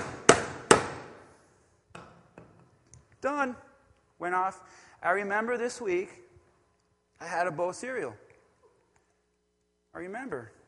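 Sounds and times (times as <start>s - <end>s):
hammer striking a nail: 0.0s - 1.2s
speech: 3.2s - 6.2s, 7.2s - 8.2s, 10.0s - 10.6s.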